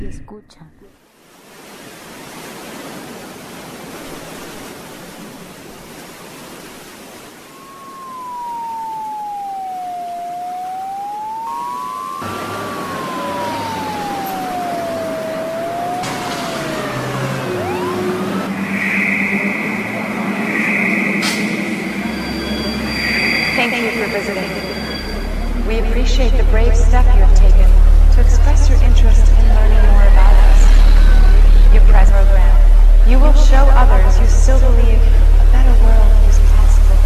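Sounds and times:
speech: 0.1 - 1.0
wailing siren: 7.4 - 37.0
city traffic noise: 12.2 - 37.0.

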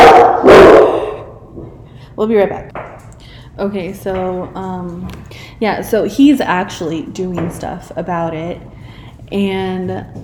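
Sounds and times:
dog barking: 0.0 - 1.3
speech: 2.2 - 3.0, 3.6 - 10.2.

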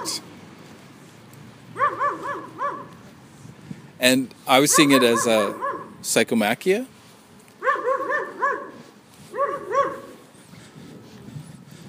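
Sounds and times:
dog high-pitched yipping barks while spinning in circles: 1.8 - 3.0, 4.6 - 6.0, 7.6 - 10.2
speech: 4.0 - 6.9.

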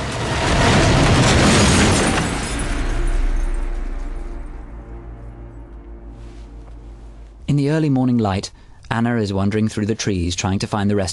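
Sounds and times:
horse-drawn carriage exploding in a fireball: 0.0 - 6.3
speech: 7.7 - 11.1.

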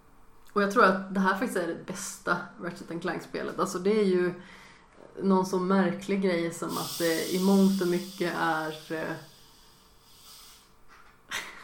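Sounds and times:
speech: 0.5 - 4.6, 5.2 - 9.3
can of Cola Zero opening with a hiss: 6.7 - 11.1.

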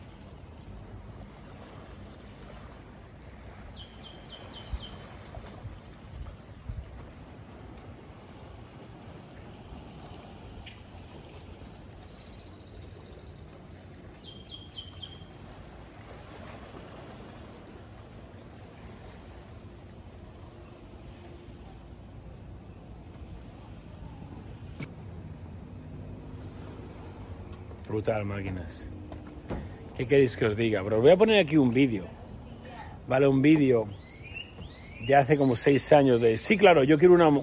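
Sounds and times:
sea waves washing: 0.0 - 37.4
speech: 27.9 - 29.0, 30.0 - 32.2, 33.1 - 34.0, 35.1 - 37.4
high bird chirps: 33.9 - 35.6.

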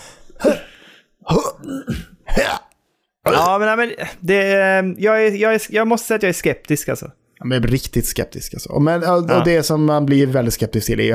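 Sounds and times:
voice imitating a video game character's grunts: 0.4 - 2.7, 3.3 - 3.6
speech: 3.5 - 11.1.

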